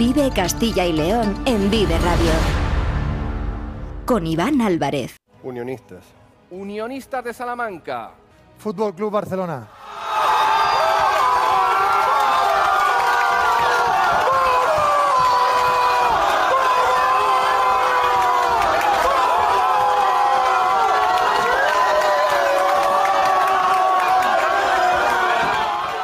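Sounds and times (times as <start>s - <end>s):
speech: 0.1s - 2.6s, 4.1s - 9.8s
team cheering and shouting in euphoric celebration: 9.7s - 26.0s.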